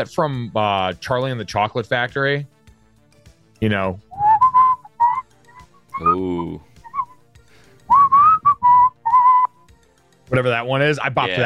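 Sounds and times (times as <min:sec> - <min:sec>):
speech: 0:00.0 - 0:02.5, 0:03.6 - 0:04.1, 0:06.0 - 0:06.7, 0:10.3 - 0:11.4
person whistling a melody: 0:04.1 - 0:09.7.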